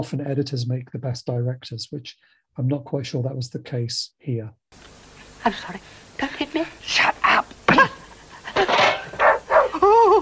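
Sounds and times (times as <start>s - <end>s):
speech: 0.0s - 7.1s
dog giving a drawn-out whiny yelp: 9.0s - 10.2s
dog barking: 9.1s - 9.8s.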